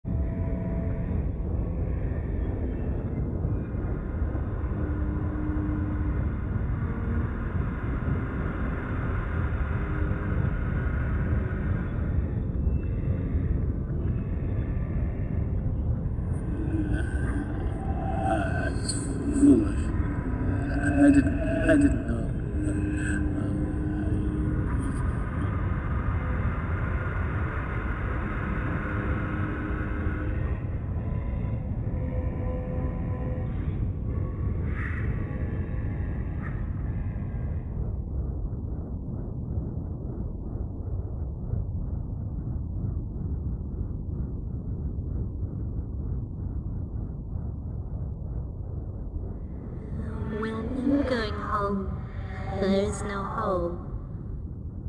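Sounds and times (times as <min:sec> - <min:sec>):
spectral ambience: 0:00.0 - 0:54.8.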